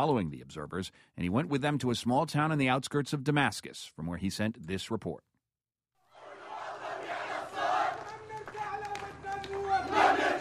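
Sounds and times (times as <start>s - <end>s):
speech: 0.0s - 5.3s
dense crowd of protesters shouting and chanting in streets of Kiswe near Damascus: 6.1s - 10.4s.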